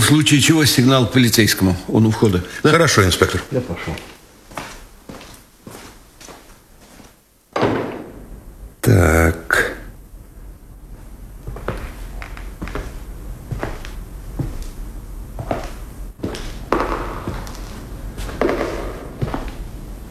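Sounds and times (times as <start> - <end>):
speech: 0.1 - 4.2, 8.9 - 9.4
slow echoing footsteps on a hard floor in an empty room: 3.9 - 7.2, 11.4 - 14.8, 15.4 - 20.1.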